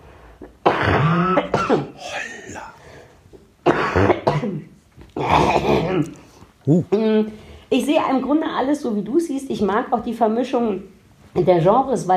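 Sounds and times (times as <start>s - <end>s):
person clearing throat: 0.4s - 2.7s, 3.6s - 4.6s, 5.2s - 6.1s, 6.7s - 7.0s
person coughing into elbow: 0.4s - 2.7s, 3.6s - 6.0s
speech: 5.5s - 12.1s.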